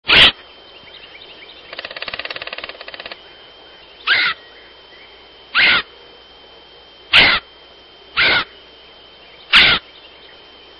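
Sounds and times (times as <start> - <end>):
Red headed Woodpecker: 1.2 - 3.2, 4.0 - 4.4, 5.6 - 5.9, 8.2 - 8.5, 9.5 - 9.9.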